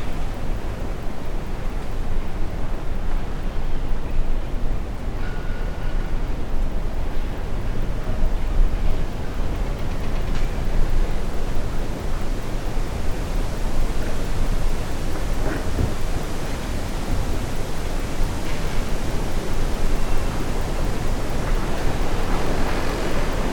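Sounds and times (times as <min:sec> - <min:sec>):
wind hissing through trees: 0:00.0 - 0:23.5.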